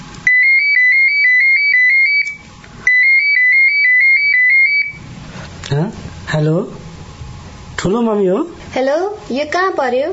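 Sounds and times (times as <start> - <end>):
telephone ringing with an electronic ringtone: 0.3 - 5.0
speech: 6.4 - 6.8, 7.9 - 10.1.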